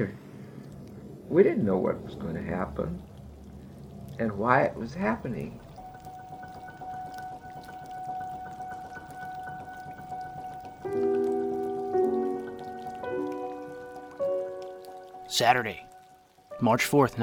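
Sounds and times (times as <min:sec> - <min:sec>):
speech: 0:00.0 - 0:00.2, 0:01.3 - 0:03.1, 0:04.2 - 0:05.7, 0:15.4 - 0:15.9, 0:16.6 - 0:17.2
cold drizzling rain in New York City: 0:00.0 - 0:17.2
sustained droning tones: 0:04.8 - 0:15.0.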